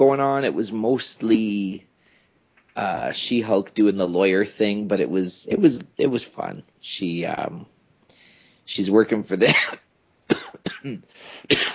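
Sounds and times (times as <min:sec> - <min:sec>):
speech: 0:00.0 - 0:01.9, 0:02.8 - 0:07.7, 0:08.7 - 0:09.8, 0:10.8 - 0:11.7
person coughing in harsh breathy bursts: 0:09.5 - 0:11.7
rough throat clearing: 0:09.5 - 0:11.7.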